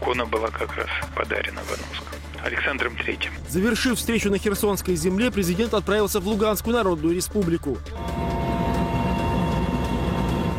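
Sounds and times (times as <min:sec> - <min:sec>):
speech: 0:00.1 - 0:08.2
faint periodic helicopter rotor beats: 0:00.1 - 0:10.5
helicopter in flight engine drone with low rumble: 0:07.9 - 0:10.5.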